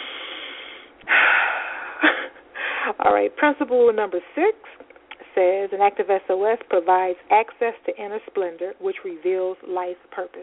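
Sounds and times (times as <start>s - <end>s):
person breathing deeply: 0.0s - 3.0s
speech: 2.9s - 10.4s.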